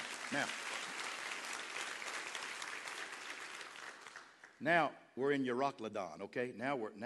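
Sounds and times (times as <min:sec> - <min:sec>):
audience applause: 0:00.0 - 0:04.5
speech: 0:00.3 - 0:00.6, 0:04.6 - 0:07.0.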